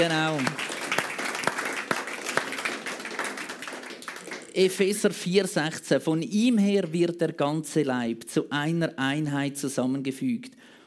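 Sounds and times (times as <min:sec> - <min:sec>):
speech: 0:00.0 - 0:00.7, 0:04.6 - 0:10.8
crowd applauding: 0:00.0 - 0:04.9.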